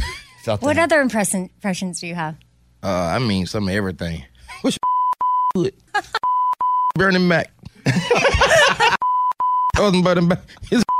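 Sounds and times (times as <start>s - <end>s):
speech: 0.4s - 4.9s, 5.6s - 6.2s, 7.0s - 9.1s, 9.8s - 10.9s
electronic censor tone: 4.8s - 5.6s, 6.2s - 7.0s, 9.0s - 9.8s
people laughing: 7.8s - 9.0s.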